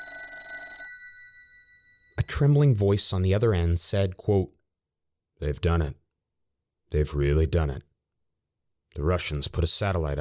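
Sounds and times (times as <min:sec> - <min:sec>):
old-fashioned telephone bell ringing: 0:00.0 - 0:02.4
speech: 0:02.3 - 0:04.6, 0:05.4 - 0:06.0, 0:06.9 - 0:07.9, 0:09.0 - 0:10.1.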